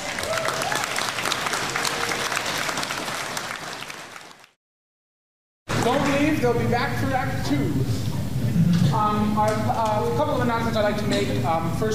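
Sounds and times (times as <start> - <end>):
crowd of students applauding: 0.0 - 4.6
speech: 5.8 - 11.9.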